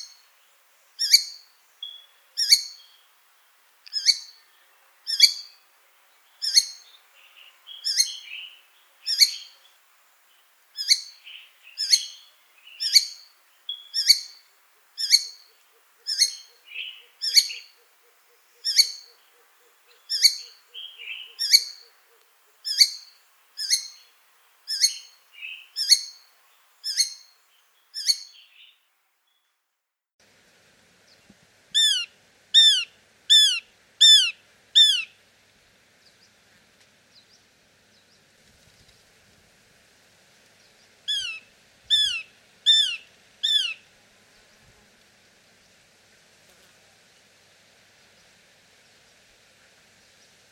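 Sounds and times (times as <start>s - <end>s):
shikra calling: 1.0s - 3.1s, 3.9s - 5.6s, 6.3s - 9.8s, 10.7s - 24.1s, 24.7s - 28.7s, 31.7s - 35.2s, 41.1s - 43.9s.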